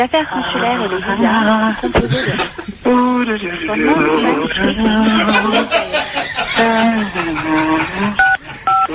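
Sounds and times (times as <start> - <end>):
speech: 0.0 - 8.3
person chuckling: 1.8 - 2.8, 3.9 - 8.9
telephone keypad dialing tones on a call to an automated phone menu: 8.2 - 8.9.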